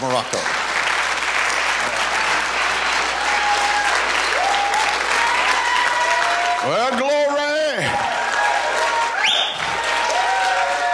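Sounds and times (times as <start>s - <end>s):
large audience applauding: 0.0s - 10.9s
faint whoops or voices from the audience: 3.2s - 6.6s, 7.9s - 10.9s.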